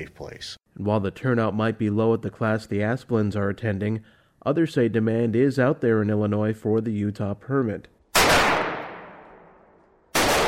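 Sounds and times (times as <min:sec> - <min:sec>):
speech: 0:00.0 - 0:08.5
gunshots at a shooting range in East Dundee, Illinois: 0:08.1 - 0:10.4.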